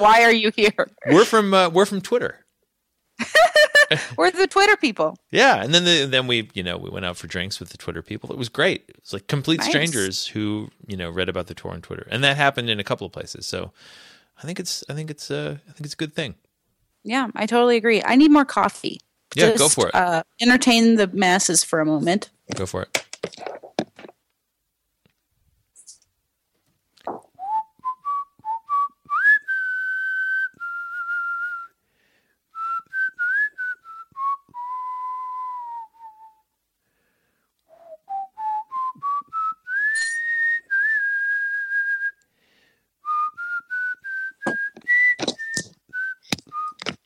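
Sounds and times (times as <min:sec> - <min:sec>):
speech: 0:00.0 - 0:02.4, 0:03.2 - 0:23.6
laughter: 0:03.2 - 0:04.2, 0:09.6 - 0:10.6, 0:19.4 - 0:20.0
person whistling an improvised melody: 0:27.4 - 0:31.8, 0:32.6 - 0:36.5, 0:37.7 - 0:42.2, 0:43.0 - 0:46.8.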